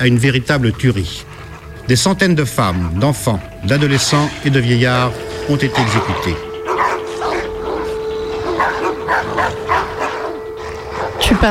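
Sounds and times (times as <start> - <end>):
speech: 0.0 - 6.5, 11.4 - 11.5
steady low droning tone: 0.0 - 11.5
several dogs barking and yelping: 1.2 - 11.5.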